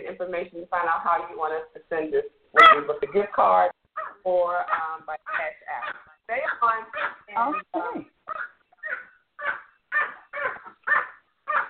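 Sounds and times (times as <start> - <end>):
speech: 0.2 - 8.1
excited dog barking over a phone line: 2.6 - 2.9, 4.0 - 7.7, 8.3 - 11.6.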